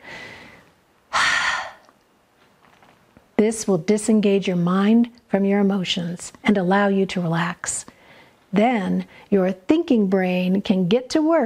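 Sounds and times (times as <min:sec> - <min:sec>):
deep slow breathing: 0:00.0 - 0:01.9
speech: 0:03.4 - 0:11.4.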